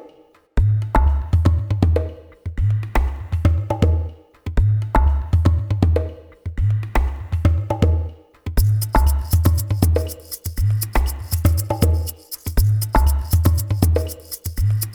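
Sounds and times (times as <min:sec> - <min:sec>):
cinematic percussion background: 0:00.6 - 0:14.9.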